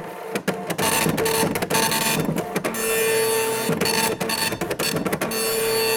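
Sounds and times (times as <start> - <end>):
dot matrix printer rattling through lines of print: 0.3 - 5.9.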